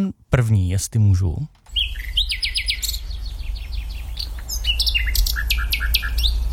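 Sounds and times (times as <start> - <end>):
speech: 0.0 - 2.1
low rumble: 0.2 - 6.5
common nightingale singing: 1.7 - 6.5.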